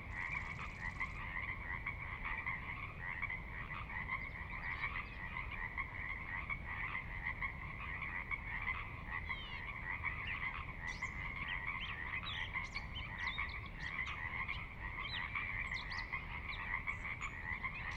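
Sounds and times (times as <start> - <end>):
chorus of frogs croaking in a valley at midnight: 0.0 - 17.9.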